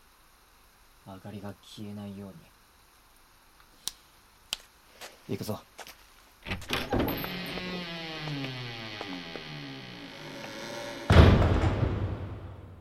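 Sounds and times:
speech: 1.1 - 2.6, 5.3 - 5.7
door creaking with a long wavering groan: 6.4 - 12.2.

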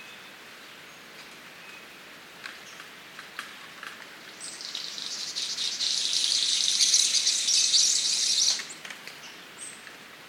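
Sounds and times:
King of Saxony bird-of-paradise whistle and crackling buzz: 4.5 - 8.8.

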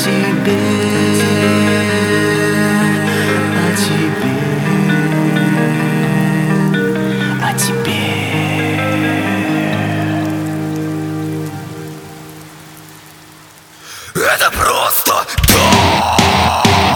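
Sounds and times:
sustained musical tone: 0.0 - 13.4
rain pattering: 0.0 - 16.9
speech: 0.4 - 1.0.

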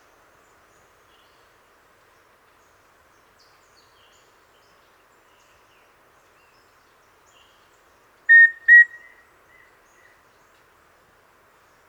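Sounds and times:
Formicarius rufipectus rufous-breasted antthrush song: 8.3 - 9.1.

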